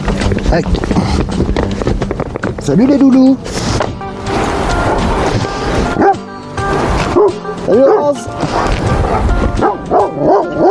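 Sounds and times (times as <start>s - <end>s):
outdoor noise: 0.0s - 10.6s
speech: 0.5s - 1.9s, 2.6s - 3.6s, 7.7s - 8.5s
dogs barking in greeting: 5.9s - 6.3s, 6.9s - 10.6s.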